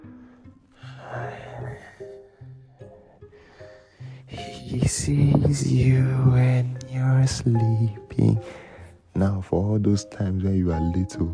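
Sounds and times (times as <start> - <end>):
voice imitating heavy wheezy mouth breathing of an overweight old man: 0.4 - 5.0
speech: 4.7 - 8.6, 9.2 - 11.3.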